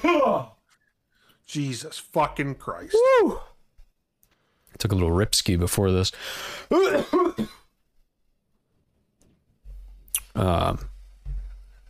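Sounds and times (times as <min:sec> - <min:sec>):
speech: 0:01.5 - 0:03.5, 0:04.8 - 0:07.6, 0:10.4 - 0:10.9
person clearing throat: 0:06.7 - 0:07.7
person coughing: 0:06.7 - 0:07.7.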